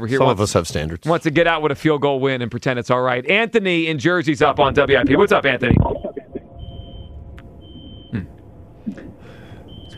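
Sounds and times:
speech: 0.0 - 6.0, 8.1 - 8.3
low rumble: 4.3 - 9.9
noisy phone line: 4.5 - 8.6
high-pitched electronic beeps on a caller's phone line: 4.8 - 8.4.

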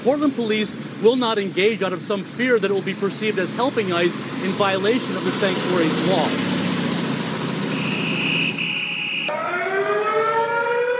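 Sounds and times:
speech: 0.0 - 6.5
sirens blaring at night: 7.6 - 10.9.

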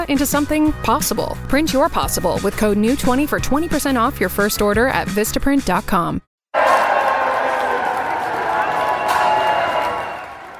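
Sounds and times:
speech: 0.0 - 6.3
large crowd at an airport roaring and cheering to salute returning combat veterans: 6.6 - 10.5.

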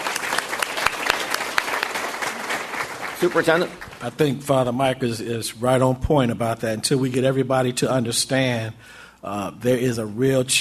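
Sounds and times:
audience applause at a community gathering in Chicago: 0.0 - 4.2
speech: 3.2 - 10.5.

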